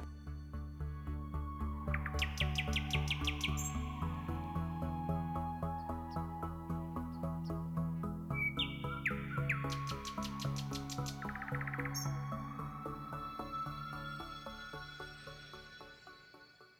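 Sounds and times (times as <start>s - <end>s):
steady pulsing musical backdrop: 0.0s - 16.7s
nightingale singing: 1.8s - 7.7s, 8.3s - 15.1s.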